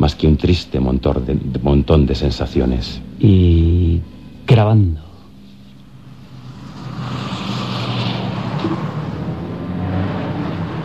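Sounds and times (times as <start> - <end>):
speech: 0.0 - 5.1
heavy traffic of hundreds of cars roaring: 5.7 - 10.8.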